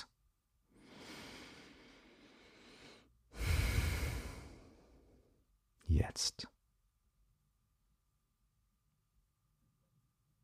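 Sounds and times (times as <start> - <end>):
deep breath in and out: 0.7 - 5.4
speech: 6.0 - 6.6.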